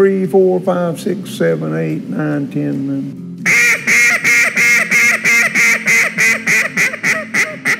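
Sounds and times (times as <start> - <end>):
speech: 0.0 - 3.6
duck call blown in a hunting-style hail call: 3.4 - 7.7.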